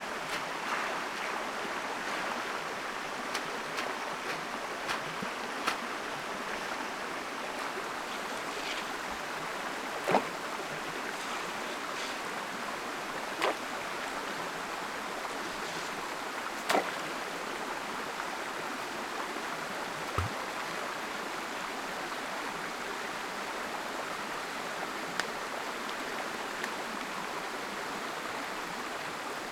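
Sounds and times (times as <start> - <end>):
waterfall in the morning: 0.0 - 29.5
stones thrown into water: 10.0 - 10.4, 13.4 - 13.6, 16.6 - 17.1, 20.1 - 20.4.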